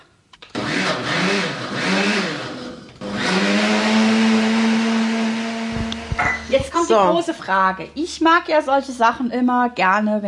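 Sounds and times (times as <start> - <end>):
blender puréeing preserved currants with juice: 0.5 - 6.8
blender switch clicks: 5.8 - 6.1
speech: 6.9 - 10.2.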